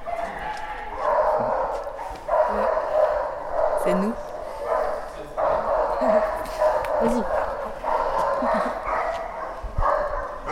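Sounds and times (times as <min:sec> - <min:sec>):
dogs barking and yipping: 0:00.0 - 0:10.5
speech: 0:03.9 - 0:04.3.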